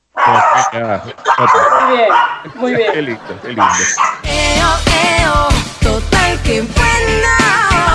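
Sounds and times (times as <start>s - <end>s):
female dog barking: 0.1s - 2.5s, 3.6s - 4.3s
speech: 0.3s - 7.9s
laughter: 0.8s - 4.3s.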